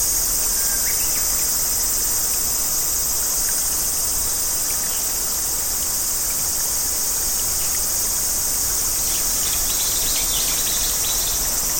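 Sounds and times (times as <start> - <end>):
summer cicadas droning: 0.0 - 11.7.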